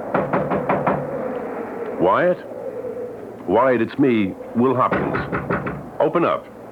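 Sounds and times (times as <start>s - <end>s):
firm knocks on a door: 0.2s - 1.0s, 4.9s - 5.8s
speech: 2.0s - 2.5s, 3.5s - 6.6s.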